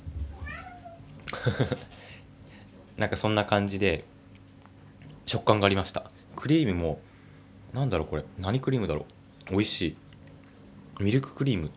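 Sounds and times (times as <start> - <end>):
cat giving a short faint meow: 0.3 - 1.1
speech: 1.4 - 2.0, 3.0 - 4.2, 5.3 - 7.1, 7.7 - 10.0, 11.0 - 11.7.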